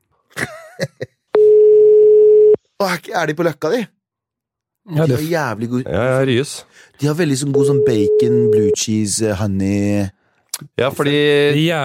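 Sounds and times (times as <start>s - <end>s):
telephone ring tone on an outgoing live call: 1.4s - 2.6s, 7.7s - 8.8s
speech: 2.8s - 4.0s, 4.8s - 11.8s.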